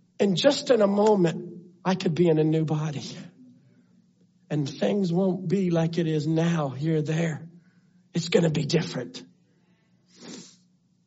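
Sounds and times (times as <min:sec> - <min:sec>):
speech: 0:00.2 - 0:03.3, 0:04.5 - 0:07.5, 0:08.2 - 0:09.3
short breathy sneeze: 0:10.1 - 0:10.7.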